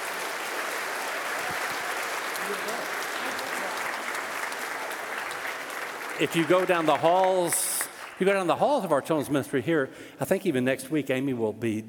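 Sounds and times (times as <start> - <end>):
audience applauding: 0.0 - 9.2
speech: 2.5 - 3.9, 6.2 - 7.6, 8.2 - 11.8.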